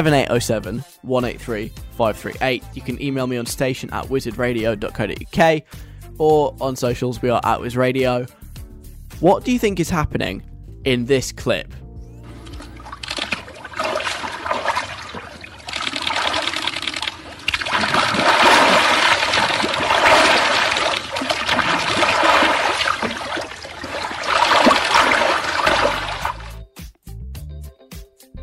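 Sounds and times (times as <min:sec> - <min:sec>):
speech: 0:00.0 - 0:08.4, 0:09.2 - 0:11.8
water gently washing and trickling over objects: 0:12.3 - 0:26.6.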